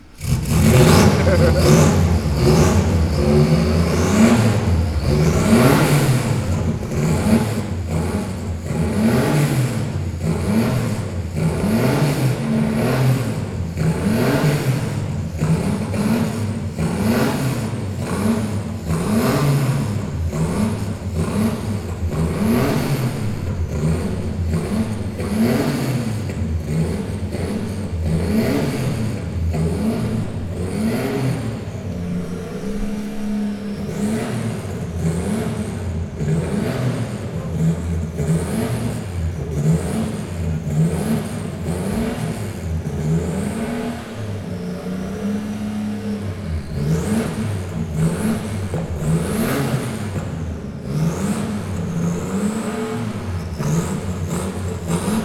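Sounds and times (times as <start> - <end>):
Porsche 959 Paris-Dakkar rally car: 0.0 - 55.2
laughter: 0.4 - 2.9.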